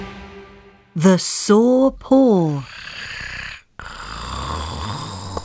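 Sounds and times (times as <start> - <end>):
speech: 1.0 - 2.7
sleeping animal snoring: 2.6 - 5.4.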